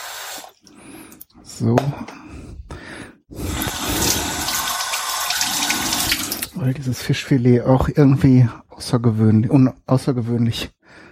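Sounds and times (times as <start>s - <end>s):
speech: 1.6s - 2.6s, 6.6s - 10.8s
water poured into a food mixture: 3.4s - 6.6s.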